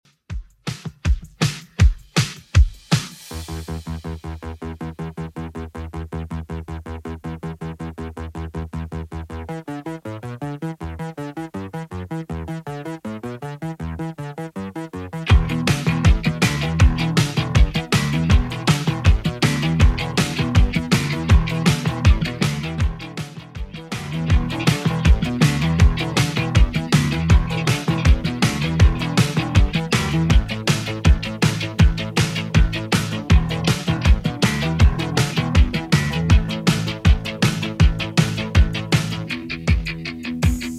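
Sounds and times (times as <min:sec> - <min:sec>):
80s Redrum drum machine beat: 0:00.1 - 0:04.2, 0:15.3 - 0:40.7.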